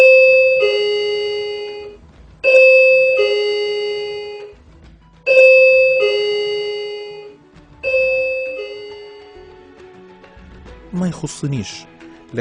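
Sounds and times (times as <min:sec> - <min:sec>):
care home electronic two-tone doorbell ringing: 0:00.0 - 0:04.6, 0:05.3 - 0:09.5
speech: 0:11.2 - 0:12.3.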